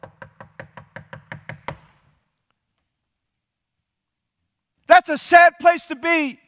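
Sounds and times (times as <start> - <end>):
knocking on a wooden door: 0.0 - 1.9
speech: 5.0 - 6.4.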